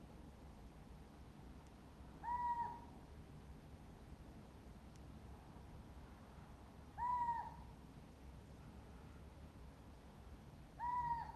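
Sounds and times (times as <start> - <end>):
quiet background noise: 0.0 - 11.3
little owl Athene noctua call: 2.2 - 2.9, 7.0 - 7.7, 10.8 - 11.3.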